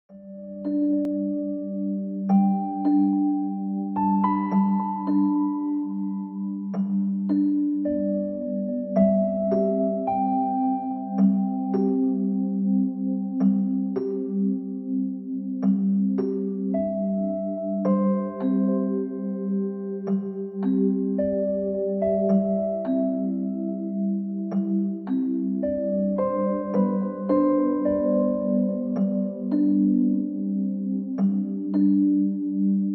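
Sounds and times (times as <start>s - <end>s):
relaxing piano music: 0.1s - 32.9s.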